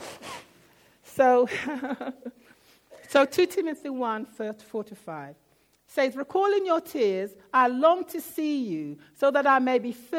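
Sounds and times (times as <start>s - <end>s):
person sniffing: 0.0s - 1.0s
speech: 1.2s - 10.1s.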